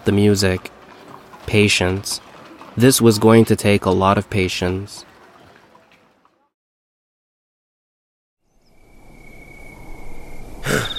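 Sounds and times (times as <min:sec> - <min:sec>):
water splashing and pouring at a well: 0:00.0 - 0:06.5
speech: 0:00.1 - 0:00.8, 0:01.5 - 0:05.1.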